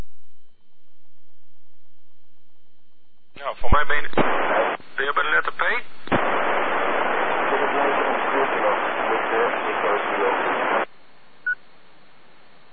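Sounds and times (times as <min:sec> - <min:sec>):
speech: 0:03.4 - 0:05.9, 0:07.8 - 0:10.8
telephone-line hiss: 0:04.3 - 0:11.6.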